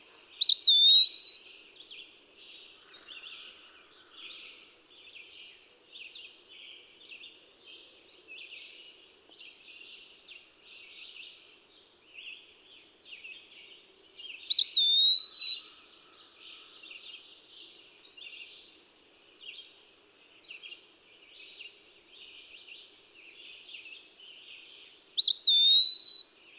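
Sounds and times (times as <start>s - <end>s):
Eastern Wood-pewee calling: 0.4s - 1.4s, 25.2s - 26.3s.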